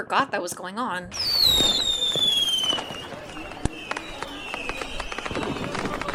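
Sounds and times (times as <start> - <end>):
speech: 0.0 - 2.0
fireworks whistling streaks at a city festival: 1.1 - 6.1
busy murmur of voices in the streets: 1.6 - 6.1.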